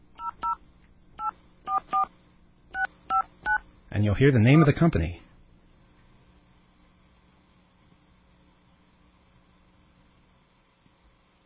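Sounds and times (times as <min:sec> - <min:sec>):
telephone keypad dialing tones calling a toll-free 800 number: 0:00.2 - 0:00.6, 0:01.2 - 0:02.1, 0:02.8 - 0:03.6
speech: 0:04.0 - 0:05.2.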